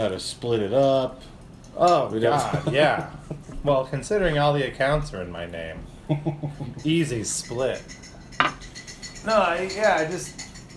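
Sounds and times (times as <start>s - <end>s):
speech: 0.0s - 8.1s, 9.2s - 10.4s
faint kitchen clatter: 0.0s - 10.7s
dishes or cutlery clinking while washing up: 6.7s - 10.7s.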